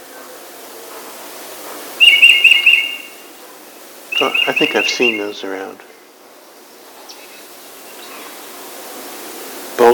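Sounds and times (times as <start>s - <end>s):
tufted titmouse singing: 2.0s - 3.3s, 4.1s - 5.6s
speech: 4.2s - 5.9s.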